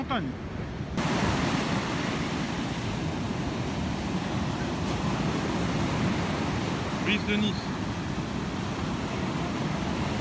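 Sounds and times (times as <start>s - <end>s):
sea waves washing on the shore at a beach in Nice: 0.0s - 10.1s
speech: 0.1s - 0.6s, 7.1s - 7.8s.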